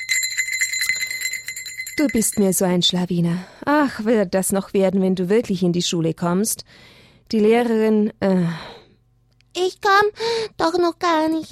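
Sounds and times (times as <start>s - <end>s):
school bell ringing: 0.0s - 2.6s
speech: 2.0s - 8.7s, 9.6s - 11.5s.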